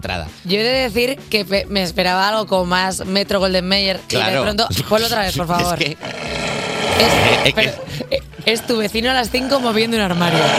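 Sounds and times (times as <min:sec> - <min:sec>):
speech: 0:00.0 - 0:10.5
loud rough gravelly animal roar supposedly a wolf: 0:06.0 - 0:07.6, 0:08.4 - 0:10.5
laughter: 0:07.1 - 0:08.5.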